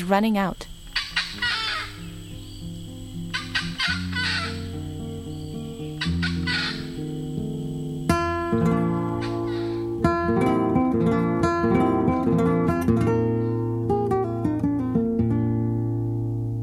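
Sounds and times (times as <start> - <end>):
speech: 0.0 - 0.7
acacai bird warning calls in Amazon canopy: 0.6 - 10.1
sustained droning instrumental music: 1.0 - 16.6.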